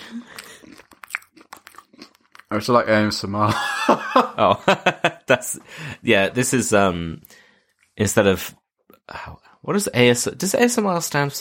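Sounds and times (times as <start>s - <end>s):
crunching of a snack being chewed: 0.2s - 2.6s
speech: 2.5s - 7.4s, 8.0s - 11.3s
laughter: 3.5s - 5.7s.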